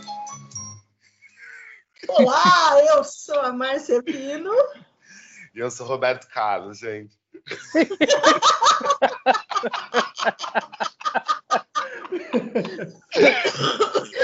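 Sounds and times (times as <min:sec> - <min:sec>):
laughter: 0:01.4 - 0:03.0, 0:07.5 - 0:14.2
speech: 0:02.1 - 0:04.9, 0:05.6 - 0:11.4, 0:12.1 - 0:14.2
person coughing: 0:11.9 - 0:14.2.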